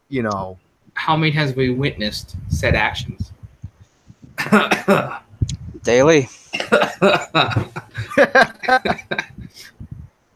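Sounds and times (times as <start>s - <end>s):
speech: 0.1s - 3.4s, 4.4s - 5.2s, 5.8s - 9.8s
man chuckling: 2.0s - 6.0s, 6.6s - 10.1s
man coughing: 4.3s - 5.4s, 6.5s - 9.9s.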